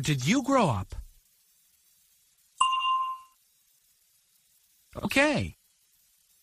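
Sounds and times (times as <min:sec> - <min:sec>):
speech: 0:00.0 - 0:01.0, 0:05.0 - 0:05.6
bell ding: 0:02.6 - 0:03.4.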